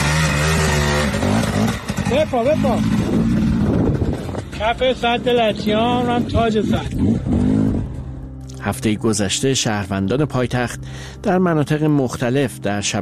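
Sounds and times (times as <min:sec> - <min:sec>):
motorcycle engines revving on a dried-up dam bed: 0:00.0 - 0:08.3
speech: 0:02.2 - 0:03.4, 0:04.6 - 0:07.5, 0:08.6 - 0:13.0
wind buffeting the microphone: 0:02.9 - 0:04.6.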